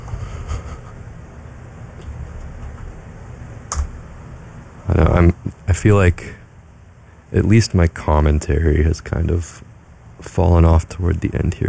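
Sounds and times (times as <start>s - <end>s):
typing on a computer keyboard: 3.7s - 4.0s
speech: 4.9s - 6.4s, 7.3s - 11.6s.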